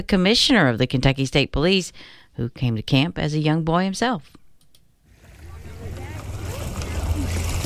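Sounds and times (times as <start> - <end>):
speech: 0.0 - 4.4
lake water lapping against the shore of an island: 5.1 - 7.6
low motor-like hum: 5.1 - 7.6.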